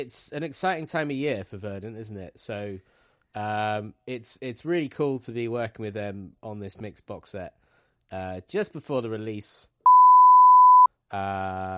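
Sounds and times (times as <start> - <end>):
speech: 0.0 - 9.7, 11.1 - 11.7
censor bleep over a spoken word: 9.9 - 10.9.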